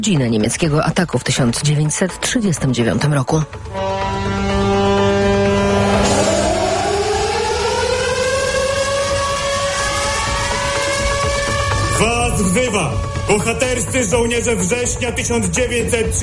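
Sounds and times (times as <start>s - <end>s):
speech: 0.0s - 4.3s, 12.4s - 16.2s
air raid sirens wailing at Westerplatte for World War II commemorations: 3.5s - 16.2s.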